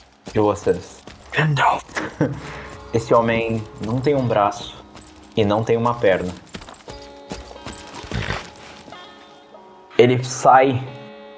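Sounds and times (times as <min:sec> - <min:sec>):
horse hooves clip-clopping: 0:00.0 - 0:09.5
speech: 0:00.4 - 0:04.8, 0:05.4 - 0:06.5, 0:10.0 - 0:11.0
laughter: 0:01.9 - 0:02.7
soft sustained tonal background: 0:02.4 - 0:11.3.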